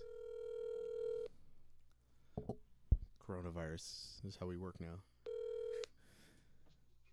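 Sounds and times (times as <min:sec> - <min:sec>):
steady electronic telephone ringing tone of a call to a bar: 0:00.0 - 0:01.3, 0:05.3 - 0:05.9
speech: 0:03.3 - 0:05.1.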